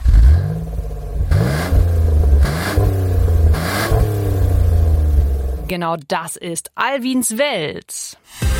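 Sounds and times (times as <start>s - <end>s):
car engine revving hard: 0.0s - 5.7s
speech: 5.7s - 8.4s.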